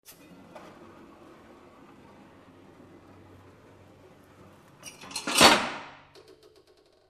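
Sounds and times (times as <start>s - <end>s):
tools working on an industrial machine during a check up: 4.8s - 7.0s.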